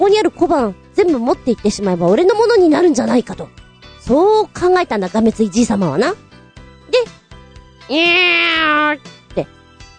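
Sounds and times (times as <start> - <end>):
speech: 0.0 - 6.2, 7.9 - 9.6
person imitating a cat meow: 7.9 - 9.0.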